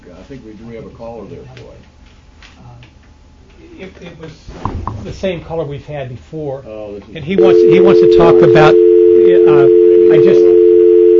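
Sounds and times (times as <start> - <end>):
speech: 0.2 - 2.0, 2.6 - 3.0, 3.6 - 8.9, 9.5 - 10.5
telephone dial tone after a dropped line: 7.4 - 11.1.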